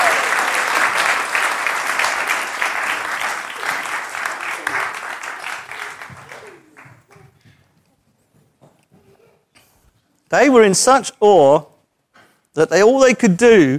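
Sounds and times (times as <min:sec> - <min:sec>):
crowd applause: 0:00.0 - 0:07.6
speech: 0:10.3 - 0:11.7, 0:12.6 - 0:13.7.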